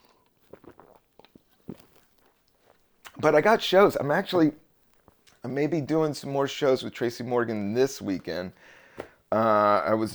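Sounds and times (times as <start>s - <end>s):
person sipping fizzy seltzer water: 0.0s - 3.2s
gulp: 0.2s - 2.0s
speech: 3.2s - 4.6s, 5.4s - 10.1s.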